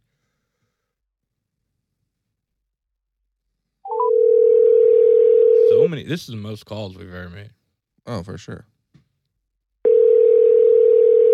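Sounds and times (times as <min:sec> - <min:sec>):
telephone dial tone: 0:03.9 - 0:05.7, 0:09.9 - 0:11.3
speech: 0:05.9 - 0:08.7.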